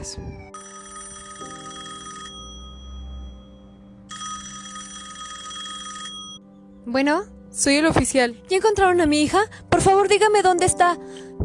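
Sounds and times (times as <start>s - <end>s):
speech: 0.0s - 0.6s, 6.8s - 11.3s
telephone with bright trilling electronic ring: 0.5s - 6.4s.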